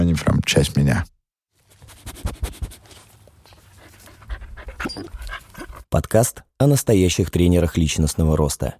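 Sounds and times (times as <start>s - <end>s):
speech: 0.2s - 1.1s, 5.9s - 8.7s
dog panting: 3.6s - 5.9s.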